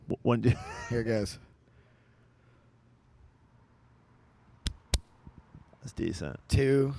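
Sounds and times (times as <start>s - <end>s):
speech: 0.2s - 1.5s, 5.8s - 6.9s
hand slapping a leg: 4.6s - 5.1s.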